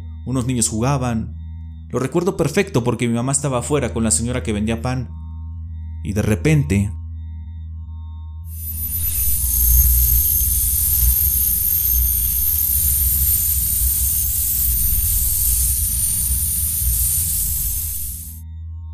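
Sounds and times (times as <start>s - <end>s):
speech: 0.2s - 5.2s, 6.0s - 7.0s
strange metallic magnetic-sounding drone: 8.5s - 18.4s
thin high-pitched hiss: 8.5s - 18.4s.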